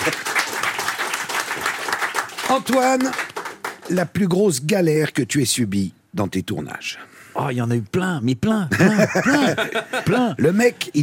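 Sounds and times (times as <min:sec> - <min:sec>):
speech: 0:00.0 - 0:00.3, 0:02.5 - 0:03.2, 0:03.9 - 0:11.0
audience applause: 0:00.0 - 0:04.0
laughter: 0:08.7 - 0:10.4.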